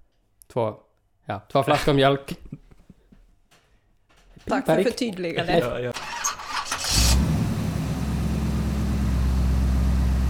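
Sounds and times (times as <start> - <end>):
speech: 0.5 - 2.5, 4.4 - 6.0
laughter: 1.7 - 3.0, 4.5 - 6.0
car engine cranking and settling into idle: 6.0 - 10.2.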